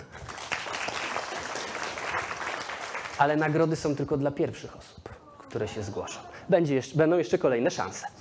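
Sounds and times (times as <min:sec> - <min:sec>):
audience clapping: 0:00.0 - 0:03.8
speech: 0:03.2 - 0:08.1.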